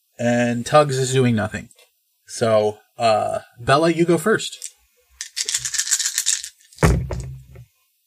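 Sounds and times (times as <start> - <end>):
speech: 0.2 - 4.7
dice rattling in a cup: 4.6 - 6.8.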